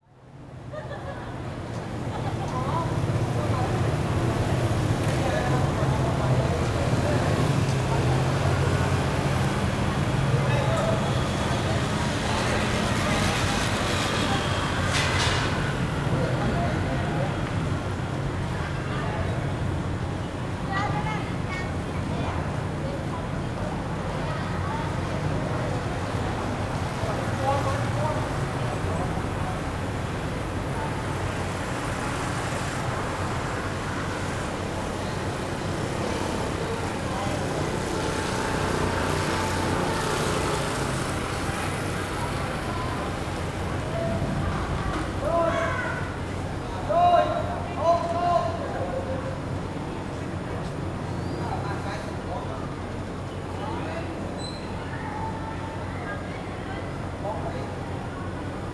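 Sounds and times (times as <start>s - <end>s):
traffic at a street intersection in Phnom Penh Cambodia: 0.0s - 58.7s.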